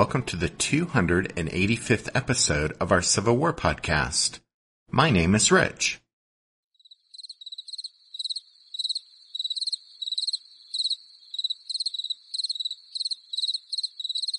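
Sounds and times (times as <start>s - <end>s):
speech: 0.0s - 6.0s
crickets chirping: 6.8s - 14.3s.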